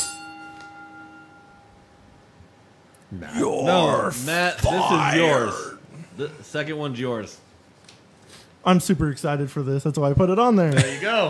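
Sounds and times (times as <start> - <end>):
single bell struck and ringing: 0.0 - 1.9
speech: 3.1 - 5.6, 6.2 - 7.4, 8.6 - 11.2
laughter: 10.7 - 11.2.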